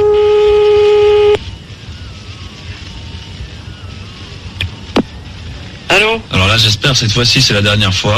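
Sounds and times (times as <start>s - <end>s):
telephone call tone while dialing: 0.0s - 1.4s
low hiss: 0.0s - 8.1s
speech: 6.6s - 8.1s.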